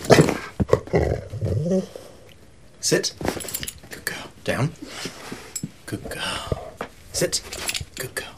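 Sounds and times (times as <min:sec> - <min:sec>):
dog growling: 0:00.2 - 0:02.1
speech: 0:00.9 - 0:02.0, 0:02.9 - 0:03.3, 0:04.5 - 0:05.2, 0:07.2 - 0:07.7.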